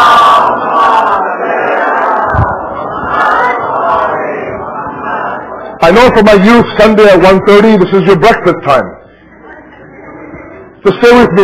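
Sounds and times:
audience loudly chanting salawat in unison: 0:00.0 - 0:05.9
speech: 0:05.8 - 0:09.0, 0:10.8 - 0:11.4.

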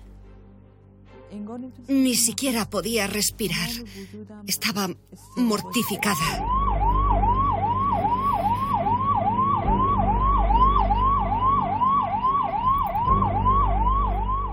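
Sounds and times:
speech: 0:01.3 - 0:06.6
ambulance siren wailing in rapid rising sweeps: 0:05.3 - 0:14.5.

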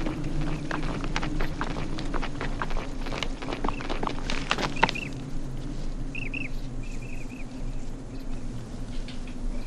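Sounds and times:
donkey hooves clopping walking up a hill: 0:00.0 - 0:09.6
steady low rumble: 0:00.0 - 0:09.6
faint chirps: 0:06.1 - 0:08.6.

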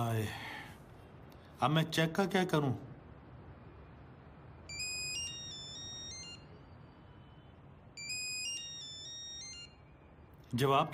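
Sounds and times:
speech: 0:00.0 - 0:00.5, 0:01.6 - 0:02.9, 0:10.5 - 0:10.9
phone ringtone playing a bright melodic electronic tune: 0:04.6 - 0:10.2.

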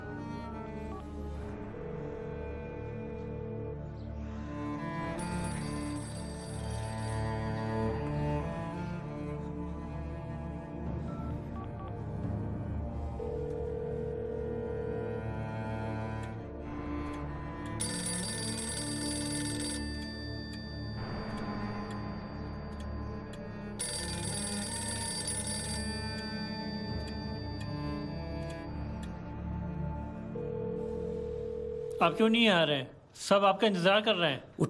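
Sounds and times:
dense steady musical background: 0:00.0 - 0:34.6
telephone ringing unanswered: 0:04.8 - 0:09.0, 0:17.1 - 0:32.7
speech: 0:32.0 - 0:34.6.

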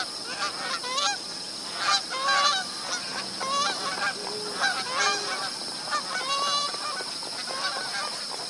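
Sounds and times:
large flock of magpie geese honking at a billabong: 0:00.0 - 0:08.4
steady ambient hiss: 0:00.0 - 0:08.4.

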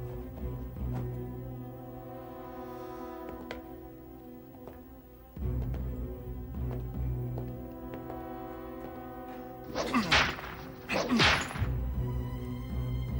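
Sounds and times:
low sustained musical drone: 0:00.0 - 0:13.1
whip lashes cracking: 0:09.7 - 0:11.8.

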